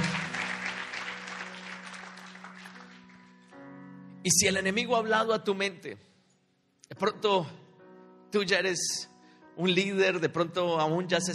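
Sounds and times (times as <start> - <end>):
crowd clapping loudly: 0.0 - 3.6
speech: 4.2 - 6.1, 7.0 - 7.6, 8.3 - 11.3.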